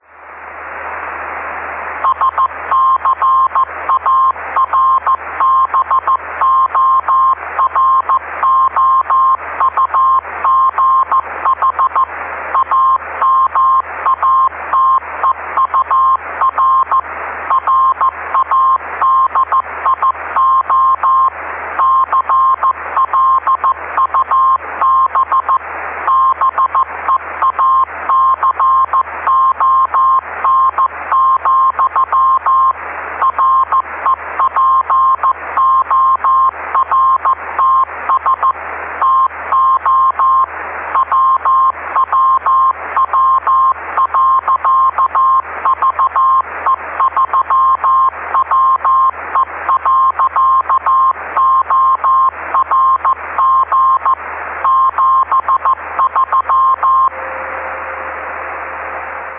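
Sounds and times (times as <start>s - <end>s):
CW beacon morse code tone: 2.0s - 57.4s.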